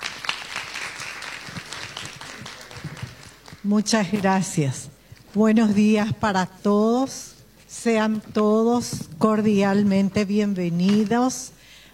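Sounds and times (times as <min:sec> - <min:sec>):
audience applause welcoming a speaker: 0:00.0 - 0:03.7
speech: 0:03.6 - 0:11.6.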